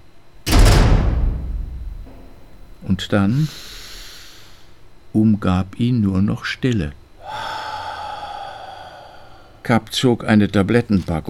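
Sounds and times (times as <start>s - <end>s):
heavy cold-room door pulled shut with a deep thud: 0.4s - 3.1s
speech: 2.8s - 3.7s, 5.2s - 7.0s, 9.7s - 11.2s.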